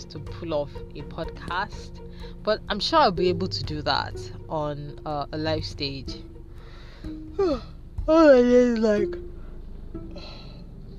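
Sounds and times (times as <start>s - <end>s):
speech: 0.0s - 6.3s, 7.0s - 9.3s
person yawning: 7.3s - 7.7s.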